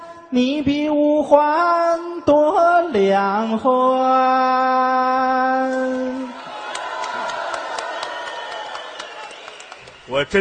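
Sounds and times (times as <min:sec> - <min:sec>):
speech: 0:00.3 - 0:05.0, 0:10.1 - 0:10.3
large audience clapping and cheering: 0:06.2 - 0:10.3.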